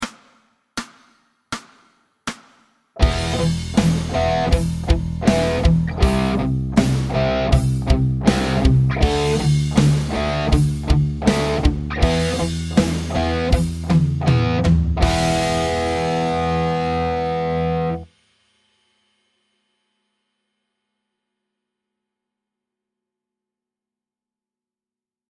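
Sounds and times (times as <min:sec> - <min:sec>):
rock riff: 0:03.0 - 0:18.1.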